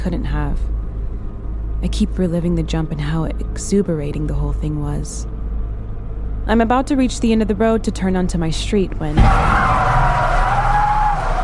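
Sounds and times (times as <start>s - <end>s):
speech: 0.0s - 0.8s, 1.8s - 5.4s, 6.4s - 9.7s
low rumble: 0.0s - 11.4s
car braking hard with tires skidding: 9.2s - 11.4s.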